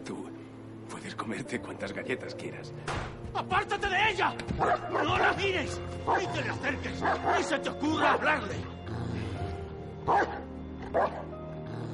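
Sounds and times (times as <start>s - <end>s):
speech: 1.2s - 8.8s, 10.1s - 10.3s
dog barking: 4.6s - 5.3s, 6.1s - 6.4s, 7.0s - 8.2s, 10.1s - 11.3s.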